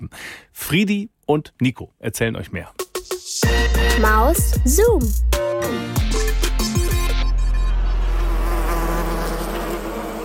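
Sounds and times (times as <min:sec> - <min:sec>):
speech: 0:00.1 - 0:06.1
Asian hornet buzzing: 0:05.9 - 0:10.2.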